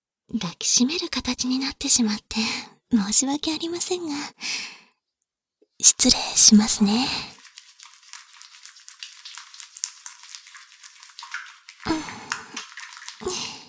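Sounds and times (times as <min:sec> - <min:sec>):
speech: 0:00.3 - 0:04.8, 0:05.8 - 0:07.4
wet sudsy scrubbing of hair being washed with water from the roots: 0:05.9 - 0:13.6.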